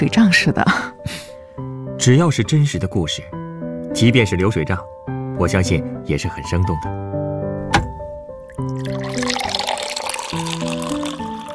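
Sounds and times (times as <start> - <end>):
speech: 0.0 - 1.2, 2.0 - 7.2
soft music: 0.0 - 11.5
lemonade being poured into a glass: 8.5 - 11.5.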